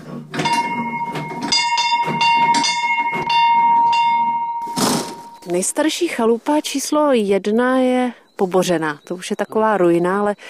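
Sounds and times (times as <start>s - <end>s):
small village chapel bell ringing in a belfry renovated in 2014: 0.4s - 5.7s
speech: 5.5s - 10.4s.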